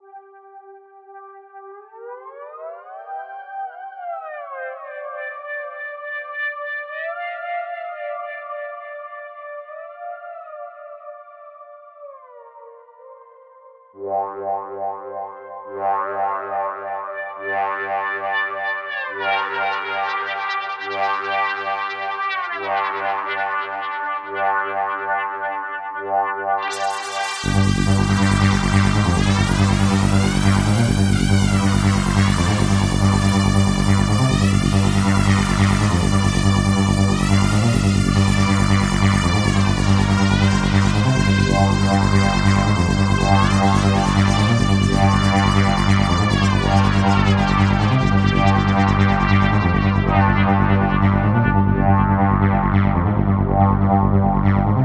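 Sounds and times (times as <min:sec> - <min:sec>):
resonant synth lead: 0:14.0 - 0:54.8.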